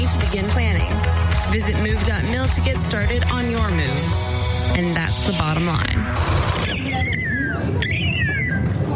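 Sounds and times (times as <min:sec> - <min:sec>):
speech: 0:00.1 - 0:07.9
bird calls with falling whistled notes and harsh chirps: 0:06.7 - 0:08.8.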